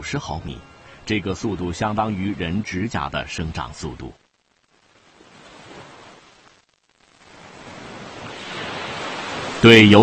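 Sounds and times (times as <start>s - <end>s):
speech: 0.0s - 4.2s, 9.6s - 10.0s
ocean waves crashing against rocks: 5.1s - 6.5s, 7.2s - 10.0s.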